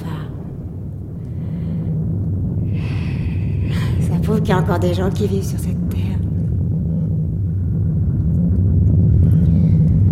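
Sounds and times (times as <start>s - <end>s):
storm raging with low-pitched rumbling roar: 0.0s - 10.1s
speech: 4.3s - 6.0s.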